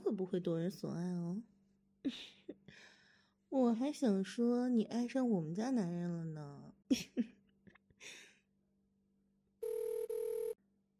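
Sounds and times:
speech: 0.2s - 2.9s, 3.5s - 7.4s
telephone ringing with electronic tone: 9.6s - 10.6s.

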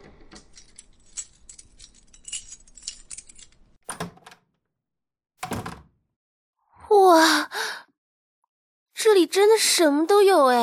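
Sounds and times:
keys jangling as they are handed over: 0.3s - 4.1s
speech: 9.2s - 10.6s.

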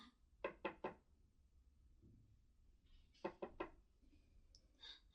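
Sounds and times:
knocking on a door: 0.4s - 1.0s, 3.2s - 3.7s.

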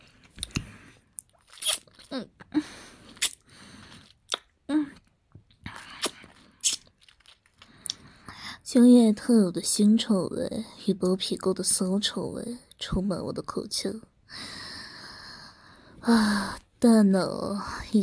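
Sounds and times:
speech: 2.1s - 2.4s, 8.8s - 14.5s, 16.0s - 18.0s
wet mouth sounds of chewing with mouth closed: 3.1s - 8.1s.

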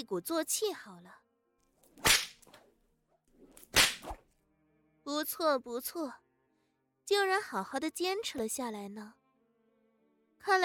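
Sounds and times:
speech: 0.0s - 1.3s, 5.0s - 6.2s, 7.1s - 9.2s, 10.4s - 10.6s
whip lashes: 2.0s - 2.6s, 3.5s - 4.3s.

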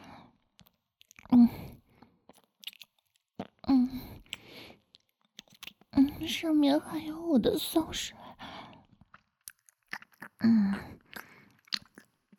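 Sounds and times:
chewing fried chicken: 0.4s - 1.3s, 2.2s - 6.0s, 8.7s - 12.3s
bites into crunchy fried chicken: 2.3s - 3.6s, 4.2s - 5.9s, 9.0s - 12.3s
speech: 6.3s - 8.2s.

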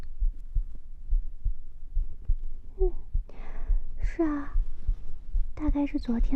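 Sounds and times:
heartbeat at an even resting pace: 0.0s - 6.3s
speech: 4.2s - 4.6s, 5.6s - 6.3s.

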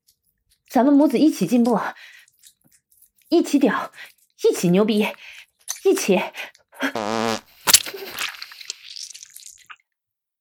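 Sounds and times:
speech: 0.7s - 2.1s, 3.3s - 7.4s
string of buzzing, wet and sputtering farts: 7.0s - 7.8s.

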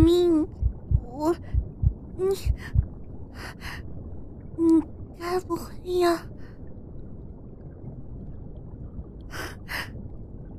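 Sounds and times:
loud heartbeat thumping in lub-dub pairs: 0.0s - 3.0s
speech: 2.2s - 2.8s, 4.6s - 6.4s.

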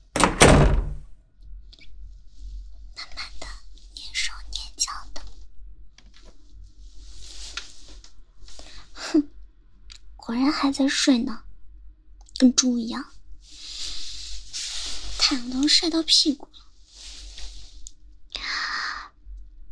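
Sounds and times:
door opening with a sharp thunk: 0.1s - 1.0s
soft breathy whispering: 1.8s - 5.5s, 12.9s - 19.2s
speech: 10.6s - 11.5s, 12.4s - 13.1s, 15.3s - 16.6s.

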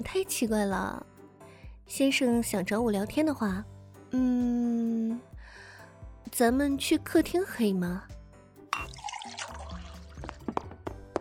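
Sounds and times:
speech: 0.0s - 1.1s, 1.9s - 5.3s, 6.2s - 8.2s
faint water pouring: 8.8s - 10.6s.

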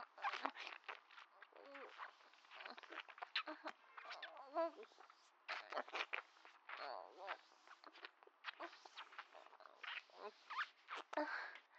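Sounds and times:
soft indistinct murmuring: 0.0s - 11.6s.

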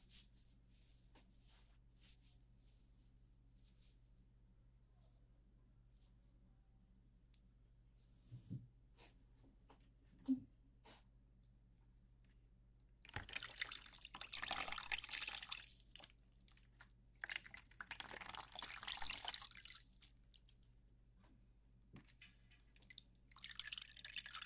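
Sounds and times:
faint water drips: 12.8s - 20.7s, 22.1s - 24.4s
water rinsing hair: 13.1s - 20.5s, 22.7s - 24.4s.

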